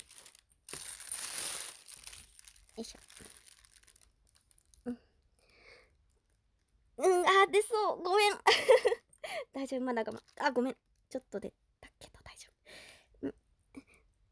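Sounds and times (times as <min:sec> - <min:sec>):
plastic bag crinkling: 0:00.0 - 0:04.9
speech: 0:02.8 - 0:03.3, 0:04.8 - 0:05.1, 0:07.0 - 0:11.6, 0:13.2 - 0:13.4.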